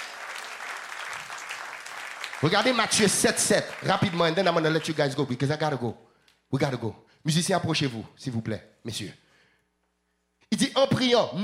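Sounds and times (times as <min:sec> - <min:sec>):
audience crowd applauding: 0:00.0 - 0:05.5
speech: 0:02.4 - 0:09.2, 0:10.5 - 0:11.4.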